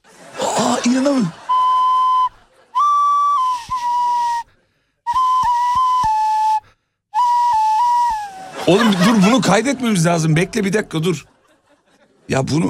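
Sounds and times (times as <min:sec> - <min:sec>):
laughter: 0:00.0 - 0:04.4, 0:08.2 - 0:12.6
speech: 0:00.8 - 0:01.4, 0:08.7 - 0:11.3, 0:12.3 - 0:12.6
breathy wavering flute played through a person's nostril: 0:01.3 - 0:09.1
brief burst of noisy breath: 0:03.5 - 0:05.1.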